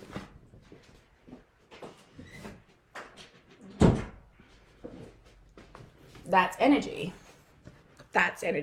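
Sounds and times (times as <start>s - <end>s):
door shutting with a sharp solid thud: 3.8s - 4.2s
speech: 6.3s - 7.2s, 8.2s - 8.6s.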